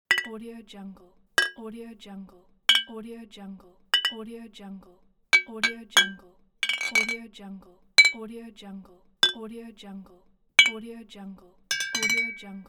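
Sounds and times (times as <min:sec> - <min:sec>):
bottle clink: 0:00.0 - 0:00.3, 0:02.7 - 0:02.9, 0:04.0 - 0:04.2, 0:05.4 - 0:07.2, 0:08.0 - 0:08.2, 0:10.6 - 0:10.8, 0:11.7 - 0:12.6.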